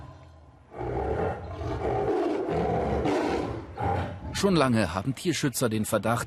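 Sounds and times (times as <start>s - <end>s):
tiger roaring: 0.7s - 4.5s
speech: 4.4s - 6.2s.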